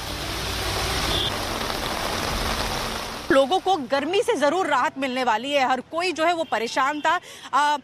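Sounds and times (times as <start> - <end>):
monsoon rain falling over a road in Delhi NCR India: 0.0 - 4.7
low rumble of passing traffic: 0.0 - 5.0
speech: 3.4 - 7.8.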